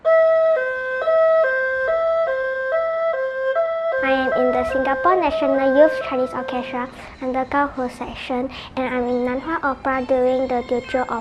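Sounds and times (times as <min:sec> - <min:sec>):
ambulance siren alternating between two pitches: 0:00.0 - 0:07.2
speech: 0:04.6 - 0:11.1.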